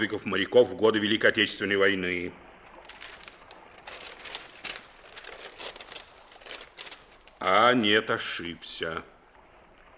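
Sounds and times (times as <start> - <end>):
speech: 0.0 - 2.5, 7.4 - 9.1
paper package being opened, crinkling and rustling: 2.7 - 7.5.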